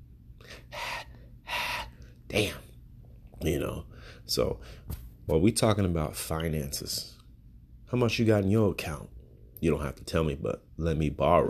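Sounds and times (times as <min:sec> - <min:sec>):
person imitating heavy labored asthmatic breathing: 0:00.4 - 0:02.0
speech: 0:02.3 - 0:02.6, 0:03.4 - 0:07.2, 0:07.9 - 0:11.4.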